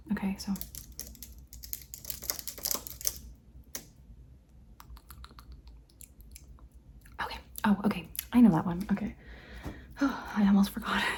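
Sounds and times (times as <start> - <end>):
speech: 0.2 - 0.8, 7.6 - 9.2, 10.0 - 11.1
typing on a computer keyboard: 0.5 - 3.9.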